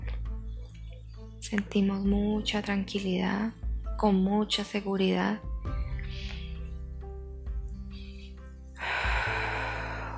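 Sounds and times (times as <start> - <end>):
soft steady musical drone: 0.0 - 10.1
speech: 1.4 - 5.5
deep breath in and out: 7.8 - 10.1.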